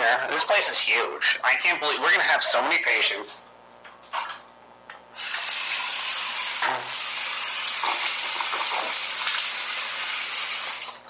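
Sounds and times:
speech: 0.2 - 3.5
shower water running: 5.2 - 11.0.

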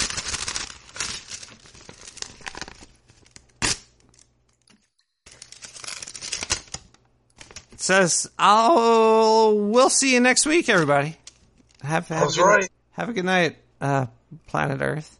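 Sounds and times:
paper envelope being torn open: 0.0 - 4.3, 5.3 - 7.8
speech: 7.9 - 11.2, 11.9 - 15.1.

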